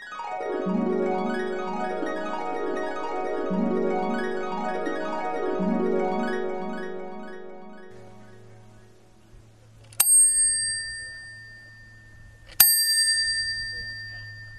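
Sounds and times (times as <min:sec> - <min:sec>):
low steady hum: 0:00.6 - 0:14.5
bicycle bell ringing: 0:09.9 - 0:14.5.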